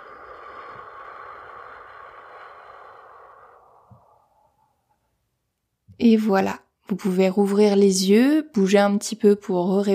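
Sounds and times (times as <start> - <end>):
slow breath in through nose, out through mouth during a guided relaxation exercise: 0.0 - 5.3
speech: 6.0 - 9.9.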